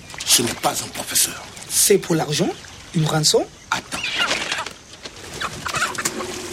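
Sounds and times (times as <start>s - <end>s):
speech: 0.4s - 3.9s
rooster clucking and squawking: 5.3s - 6.5s.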